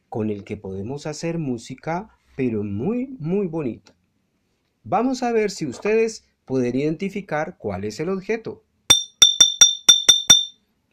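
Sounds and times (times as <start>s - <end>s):
speech: 0.1s - 4.0s, 4.8s - 8.6s
glass bottle clinking: 8.9s - 10.5s.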